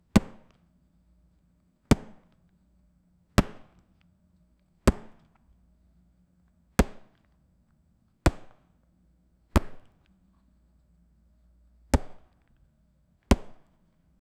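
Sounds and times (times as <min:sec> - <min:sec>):
fist hitting boxing bag: 0:00.2 - 0:00.6, 0:01.9 - 0:02.4, 0:03.4 - 0:03.8, 0:04.9 - 0:05.3, 0:06.8 - 0:07.2, 0:08.3 - 0:08.6, 0:09.6 - 0:10.0, 0:12.0 - 0:12.4, 0:13.3 - 0:13.8.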